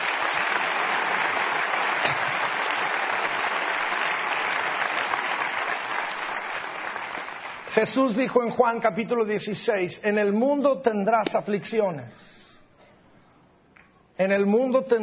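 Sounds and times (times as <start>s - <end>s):
crowd applauding with many hands clapping: 0.0s - 8.2s
speech: 7.8s - 12.3s, 14.2s - 15.0s.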